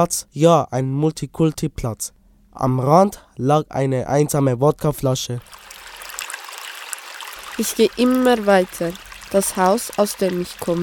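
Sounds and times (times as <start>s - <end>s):
speech: 0.0s - 5.7s, 7.6s - 10.8s
green murky stream of dirty water flowing: 5.4s - 10.8s.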